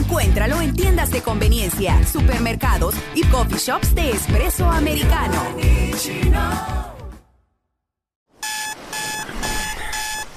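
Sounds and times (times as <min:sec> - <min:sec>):
speech: 0:00.4 - 0:06.9
loud electronic alarm clock beeping: 0:08.4 - 0:10.3.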